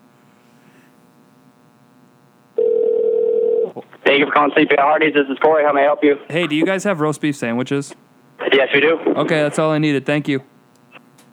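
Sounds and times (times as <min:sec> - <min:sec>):
faint hum over a phone line: 0:02.2 - 0:06.9, 0:08.0 - 0:11.3
telephone ringback tone over a phone line calling a restaurant: 0:02.6 - 0:03.8
speech: 0:04.2 - 0:10.5.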